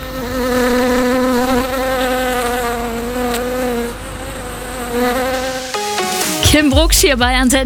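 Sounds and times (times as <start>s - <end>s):
bees buzzing in a garden: 0.0s - 6.7s
speech: 6.6s - 7.6s.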